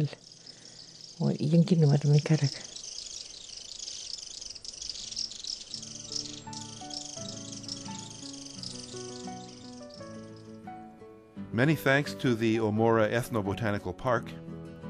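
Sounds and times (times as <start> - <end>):
speech: 0.0 - 0.2, 1.2 - 2.7, 11.6 - 14.5
shrill mountain birds chattering alarm calls: 0.0 - 11.0
steady low musical tones: 4.9 - 12.6.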